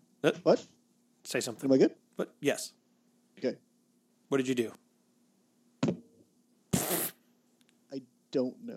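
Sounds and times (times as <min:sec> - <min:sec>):
speech: 0:00.2 - 0:02.8, 0:03.4 - 0:03.7, 0:04.3 - 0:04.8, 0:07.9 - 0:08.7
pop filter knocking against a microphone: 0:05.8 - 0:06.0.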